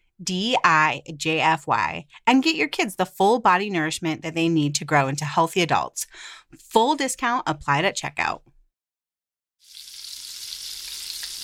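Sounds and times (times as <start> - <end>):
speech: 0.2 - 8.5
bacon sizzling in a frying pan in a kitchen: 9.6 - 11.4.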